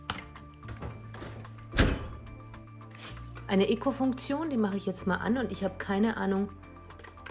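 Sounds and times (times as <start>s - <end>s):
dishwasher door closing with a thunk: 0.8s - 2.4s
speech: 3.5s - 6.7s.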